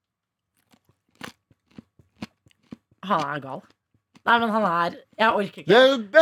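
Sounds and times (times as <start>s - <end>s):
chewing crunchy cartilage: 0.5s - 4.7s
speech: 3.1s - 6.1s.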